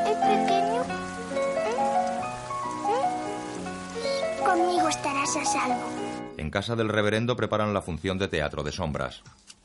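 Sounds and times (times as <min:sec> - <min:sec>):
steady rain falling: 0:00.0 - 0:06.4
speech: 0:04.9 - 0:09.4.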